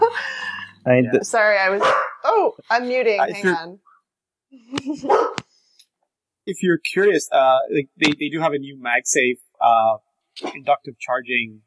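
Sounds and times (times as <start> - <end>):
laughter: 0.0 - 1.2, 2.7 - 3.7, 4.6 - 5.3, 6.5 - 10.0, 10.6 - 11.5
speech: 0.8 - 3.9, 4.5 - 5.4, 6.4 - 11.6
dog barking: 1.8 - 2.2, 5.0 - 5.4
dog yelping: 1.8 - 2.3, 5.0 - 5.4.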